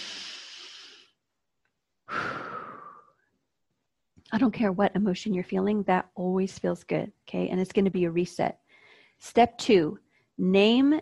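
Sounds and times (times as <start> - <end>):
slow deep breath: 0.0 - 1.2, 2.0 - 3.3, 8.7 - 9.2
speech: 4.3 - 8.6, 9.2 - 10.9.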